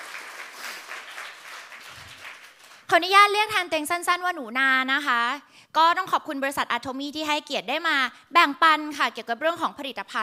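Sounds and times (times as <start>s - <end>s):
seated audience applauding at a business product presentation: 0.0s - 2.9s
speech: 2.9s - 10.2s.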